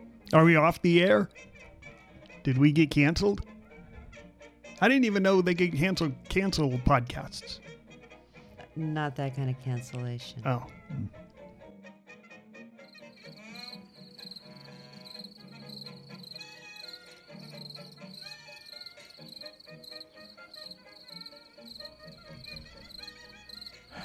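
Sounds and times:
speech: 0.3 - 1.5, 2.4 - 3.5, 4.8 - 7.8, 8.8 - 11.2
crickets chirping: 12.9 - 24.0.

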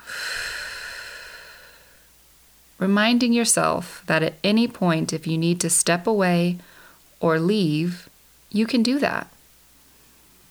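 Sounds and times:
person taking a long breath in and out: 0.0 - 2.2, 6.6 - 7.1
speech: 2.8 - 9.3.

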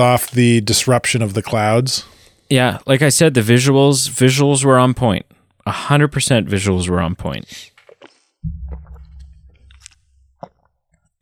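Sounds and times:
speech: 0.0 - 7.7
person gulping drinking water: 7.8 - 11.2
low swallowing rumble: 8.4 - 10.4.

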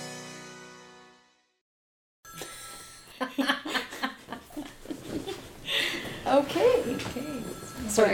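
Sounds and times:
old telephone bell ringing: 2.3 - 3.4, 6.5 - 8.1
people laughing: 3.2 - 6.0
people talking: 6.3 - 8.1.

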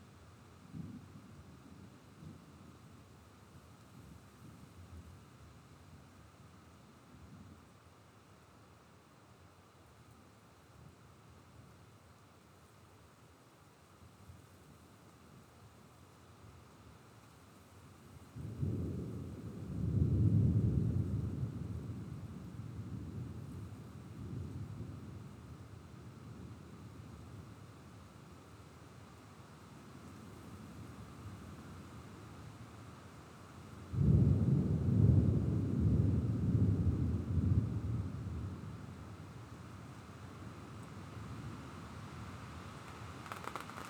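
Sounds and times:
soft steady hiss of rain or wind: 0.0 - 43.8
low rumbling thunder of an approaching thunderstorm: 18.4 - 24.8, 33.9 - 38.9.

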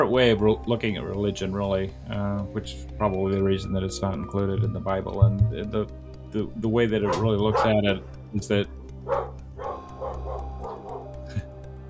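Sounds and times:
speech: 0.0 - 9.3
dogs barking: 0.0 - 11.8
low steady hum: 0.0 - 11.8
laughter: 6.4 - 8.7, 9.7 - 11.6.

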